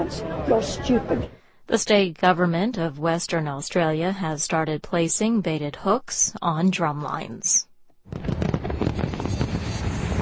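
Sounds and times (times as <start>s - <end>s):
speech: 0.0s - 8.4s
fireworks crackling and booming over Victoria Harbour in Hong Kong: 8.1s - 10.1s.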